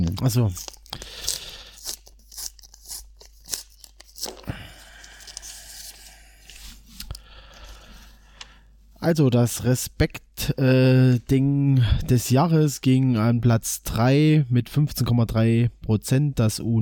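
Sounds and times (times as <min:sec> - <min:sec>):
paper envelope being torn open at a sports club awards presentation: 0:00.0 - 0:07.1
speech: 0:00.2 - 0:01.2, 0:09.0 - 0:16.7.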